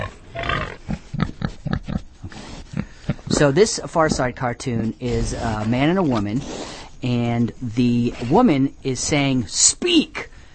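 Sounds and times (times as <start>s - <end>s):
pig grunting and squealing: 0.0s - 6.9s
speech: 3.4s - 10.1s.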